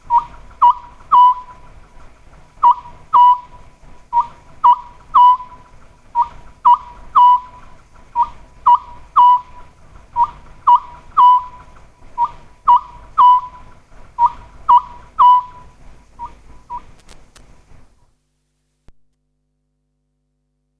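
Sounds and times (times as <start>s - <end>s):
Oriental scops owl giving three-note whistled hoots: 0.0s - 1.6s, 2.6s - 5.6s, 6.2s - 16.9s.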